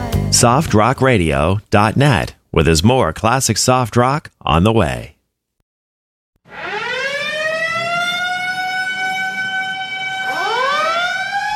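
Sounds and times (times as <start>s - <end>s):
speech: 0.3s - 5.1s
loud siren winding up to a wail: 6.4s - 11.5s.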